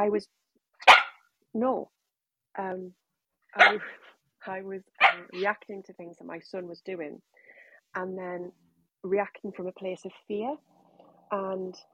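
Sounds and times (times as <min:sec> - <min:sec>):
speech: 0:00.0 - 0:02.0, 0:02.6 - 0:03.0, 0:03.6 - 0:10.7, 0:11.3 - 0:11.9
dog barking in short tonal yelps: 0:00.8 - 0:01.2, 0:03.6 - 0:04.1, 0:05.0 - 0:05.5.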